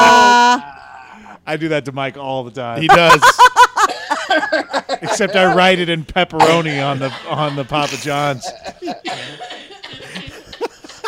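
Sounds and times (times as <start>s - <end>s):
speech: 1.5s - 3.7s, 4.3s - 9.5s
laughter: 2.8s - 11.0s
harsh coughing fit with raspy wheezing: 6.4s - 11.0s.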